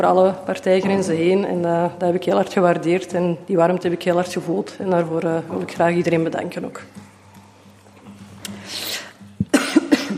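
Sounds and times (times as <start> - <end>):
speech: 0.0 - 7.1
person coughing after choking on something: 9.4 - 10.1.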